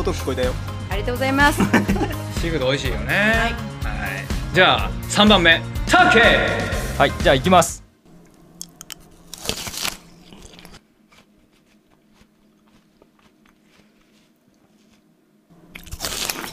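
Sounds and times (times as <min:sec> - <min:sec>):
speech: 0:00.0 - 0:07.8
laughter: 0:01.4 - 0:02.3
quieter wet chewing of a pear: 0:08.2 - 0:15.1, 0:15.7 - 0:16.5
crisp crunchy bites into a pear: 0:08.7 - 0:14.0, 0:15.8 - 0:16.5.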